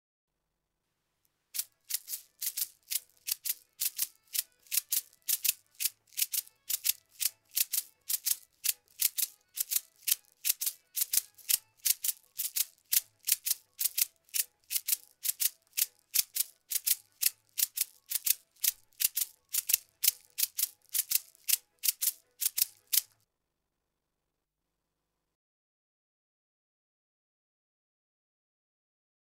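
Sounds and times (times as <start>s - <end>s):
maracas: 1.6s - 23.2s.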